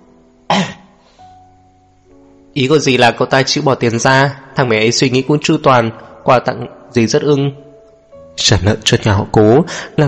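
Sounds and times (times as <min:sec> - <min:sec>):
light cough: 0:00.5 - 0:00.9
speech: 0:02.6 - 0:07.6, 0:08.4 - 0:10.0.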